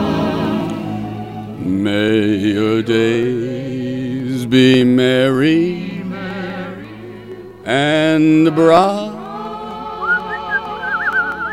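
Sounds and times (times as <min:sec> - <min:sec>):
speech: 0:01.6 - 0:05.9, 0:07.7 - 0:09.1
person whistling a song melody: 0:10.0 - 0:11.5.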